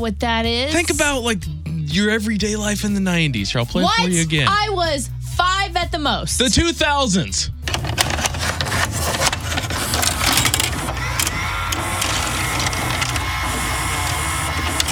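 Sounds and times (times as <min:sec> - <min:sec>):
speech: 0:00.0 - 0:07.6
claw machine motor hum: 0:07.6 - 0:14.9
arcade claw machine whirring and clattering: 0:07.7 - 0:14.9.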